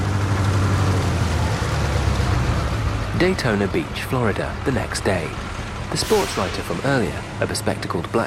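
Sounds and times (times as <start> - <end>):
Greyhound bus engine rumble pulling up to a stop: 0.0 - 8.2
broadband road noise of a bus: 0.0 - 8.2
speech: 3.2 - 8.2
low hum: 5.6 - 8.2.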